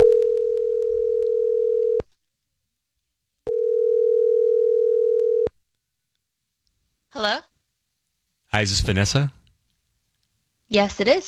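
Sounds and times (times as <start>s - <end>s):
phone line ringing out with low electronic ring tones: 0.0s - 2.0s, 3.5s - 5.5s
speech: 8.6s - 9.4s, 10.7s - 11.2s.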